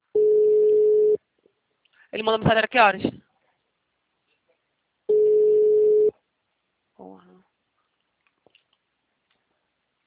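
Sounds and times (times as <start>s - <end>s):
telephone ringback tone while placing a call: 0.1s - 1.2s, 5.1s - 6.1s
speech: 2.2s - 3.2s.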